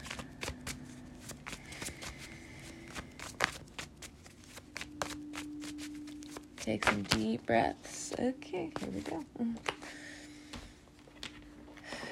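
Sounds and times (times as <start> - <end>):
tarot cards being shuffled: 0.0 - 7.4
speech: 6.6 - 9.8.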